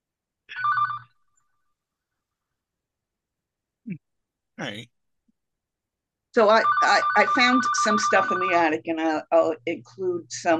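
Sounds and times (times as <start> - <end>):
telephone ringing with an electronic trill: 0.5 - 1.2, 6.4 - 8.8
speech: 4.6 - 5.0, 6.3 - 10.5.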